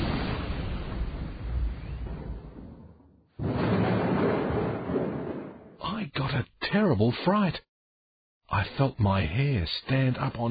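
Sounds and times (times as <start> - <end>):
loud thunder crack of lightning strike with heavy rumbling: 0.0 - 5.8
speech: 6.4 - 7.7, 8.5 - 10.5.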